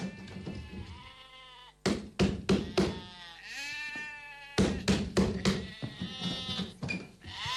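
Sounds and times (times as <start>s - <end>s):
sharp knocks and thumps: 0.0s - 1.0s, 1.8s - 3.1s, 4.6s - 7.5s
neighbour's sheep bleating in a residential neighbourhood: 0.0s - 1.8s, 2.6s - 7.5s.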